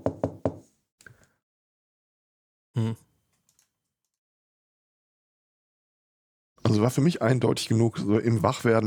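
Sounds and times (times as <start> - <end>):
knocking on a door: 0.0 - 0.6
speech: 2.8 - 3.1, 6.7 - 8.8.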